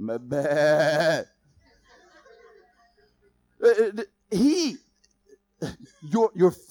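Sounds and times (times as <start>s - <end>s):
person imitating sheep bleats: 0.0s - 1.3s, 3.6s - 4.8s
speech: 0.0s - 1.4s, 3.6s - 4.8s, 5.6s - 6.6s.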